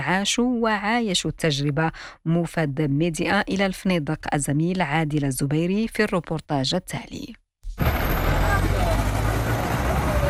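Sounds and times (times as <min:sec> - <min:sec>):
speech: 0:00.1 - 0:07.9
busy road traffic with heavy engine noise at a taxi station: 0:07.8 - 0:10.2
indistinct voices murmuring: 0:07.8 - 0:10.2.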